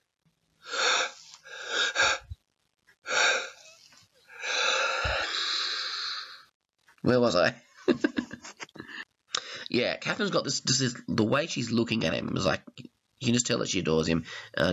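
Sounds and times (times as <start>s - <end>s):
sharp breathy gasping inhales: 0.6s - 2.4s, 3.1s - 6.5s
speech: 7.1s - 8.2s, 9.7s - 14.7s
laughter: 7.9s - 9.0s.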